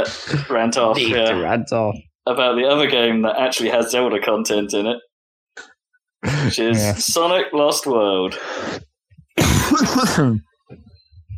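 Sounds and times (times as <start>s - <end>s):
speech: 0.0s - 10.9s
raspy cough or throat-clearing: 6.2s - 7.0s, 9.4s - 10.4s.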